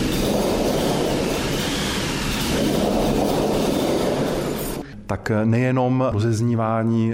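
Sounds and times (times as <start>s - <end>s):
crank-turned drum rain machine hissing with tumbling grains: 0.0s - 4.8s
speech: 5.1s - 7.1s.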